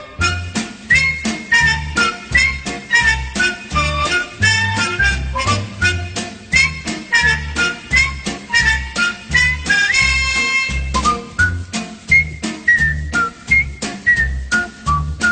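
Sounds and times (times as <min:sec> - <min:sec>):
cheerful whistled TV theme tune: 0:00.0 - 0:15.2
rhythmic instrumental backing with thumping bass and percussive beats: 0:00.0 - 0:15.2.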